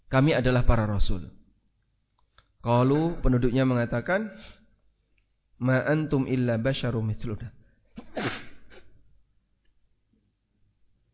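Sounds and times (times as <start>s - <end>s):
speech: 0.1s - 1.4s, 2.6s - 4.6s, 5.6s - 7.6s
breath trailing after a sneeze: 4.4s - 4.8s
person sneezing: 8.0s - 9.0s.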